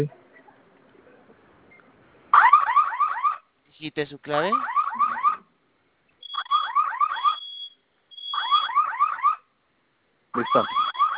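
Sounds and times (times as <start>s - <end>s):
security system fire alarm blaring warbling tones: 2.4s - 3.4s, 4.5s - 5.4s, 6.2s - 9.5s, 10.4s - 11.1s
speech: 3.8s - 5.2s, 10.4s - 10.8s
steady high beep of a security system fire alarm: 6.2s - 8.7s, 10.4s - 11.1s.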